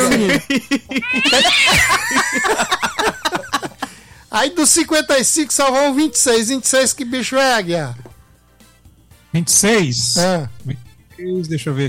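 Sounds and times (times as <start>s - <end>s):
laughter: 0.0s - 4.0s
speech: 0.2s - 3.1s, 4.4s - 8.0s, 9.3s - 11.8s
cat meowing: 1.0s - 2.2s.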